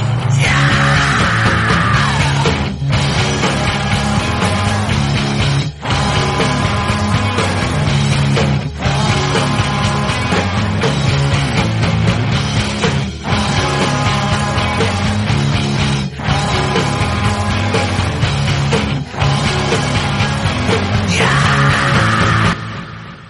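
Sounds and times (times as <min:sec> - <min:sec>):
loud guitar scream ringtone: 0:00.1 - 0:23.2.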